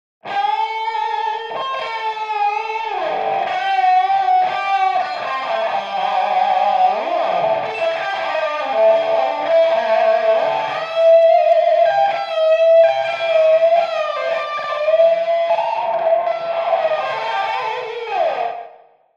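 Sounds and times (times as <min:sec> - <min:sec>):
wet tube-driven tape echo effect: 0:00.2 - 0:19.0.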